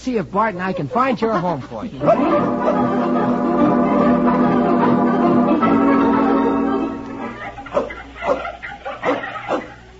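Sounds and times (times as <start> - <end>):
speech: 0.0 - 3.6
laughter: 0.6 - 6.1
dog whining: 7.4 - 9.8
dog barking: 7.7 - 9.8.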